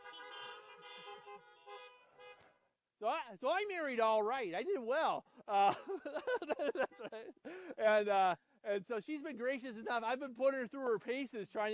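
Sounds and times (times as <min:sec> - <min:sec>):
several car horns honking together: 0:00.0 - 0:02.7, 0:06.7 - 0:07.3
speech: 0:03.0 - 0:11.7
laughter: 0:05.5 - 0:08.2.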